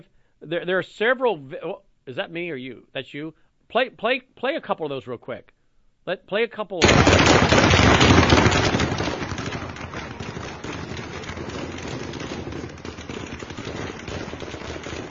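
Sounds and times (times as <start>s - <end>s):
speech: 0.4s - 7.8s
bursts of rapid automatic gunfire echoing in the green zone: 6.8s - 15.0s.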